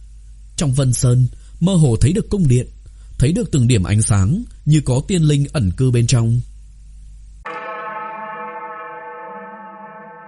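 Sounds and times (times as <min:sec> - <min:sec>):
speech: 0:00.6 - 0:06.5
single bell stroke ringing out: 0:07.4 - 0:10.2.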